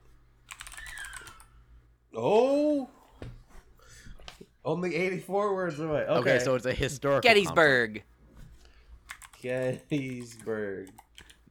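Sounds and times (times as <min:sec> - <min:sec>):
quiet typing on a computer keyboard: 0:00.5 - 0:01.5, 0:09.1 - 0:11.4
speech: 0:02.2 - 0:02.9, 0:04.7 - 0:08.1, 0:09.4 - 0:11.0.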